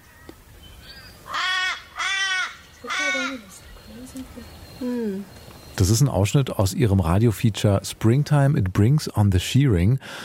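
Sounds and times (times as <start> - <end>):
faint bird sounds: 0.0 - 7.1
crow cawing: 1.2 - 3.6
speech: 4.2 - 10.2.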